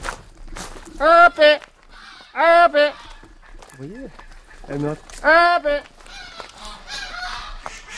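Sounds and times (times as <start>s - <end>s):
geese honking in reply while being fed: 0.9s - 7.9s
softer geese and duck calls: 0.9s - 7.9s
speech: 1.0s - 1.6s, 2.4s - 2.9s, 3.8s - 6.0s.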